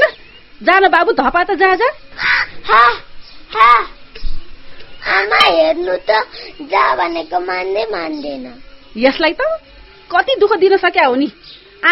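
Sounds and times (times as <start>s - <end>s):
speech: 0.6s - 2.0s, 2.7s - 4.0s, 5.0s - 11.9s
crow cawing: 2.2s - 3.9s.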